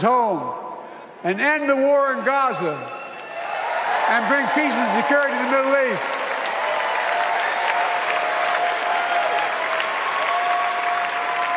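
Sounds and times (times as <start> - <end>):
speech: 0.0 - 0.6, 1.2 - 3.0, 4.1 - 6.2
large audience applause: 3.1 - 11.5.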